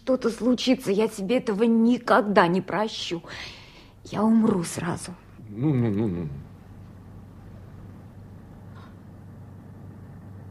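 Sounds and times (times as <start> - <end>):
speech: 0.1 - 6.5
motorboat engine droning: 5.4 - 10.5.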